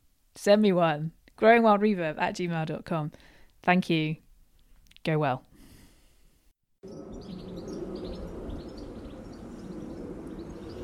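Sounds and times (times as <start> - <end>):
speech: 0.4 - 4.2, 5.0 - 5.5
garden birds chirping and singing short songs: 6.8 - 10.8
steady broad low rumble of distant city traffic: 6.8 - 10.8.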